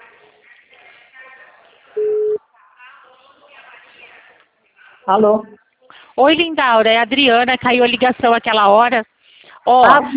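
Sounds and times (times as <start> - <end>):
telephone tone as a call is placed: 2.0 - 2.4
speech: 5.1 - 5.6, 6.2 - 10.1.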